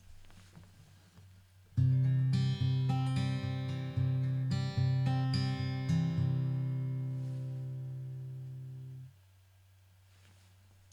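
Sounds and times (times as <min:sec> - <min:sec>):
guitar picking the note C: 0:01.8 - 0:09.1.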